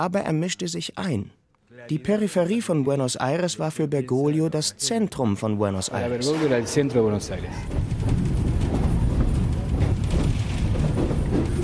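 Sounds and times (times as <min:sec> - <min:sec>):
speech: 0:00.0 - 0:08.2
commuter train carriages rattling: 0:06.0 - 0:11.6
commuter train from central Buenos Aires to Liniers rolling along the tracks: 0:06.2 - 0:11.6.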